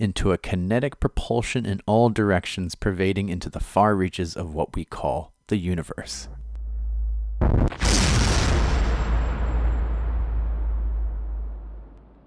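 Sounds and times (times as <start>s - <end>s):
speech: 0.0s - 6.4s, 7.4s - 7.9s
low rumbling lead-in: 6.2s - 12.2s
massive deep booming explosion with rumbling tail: 6.4s - 12.2s.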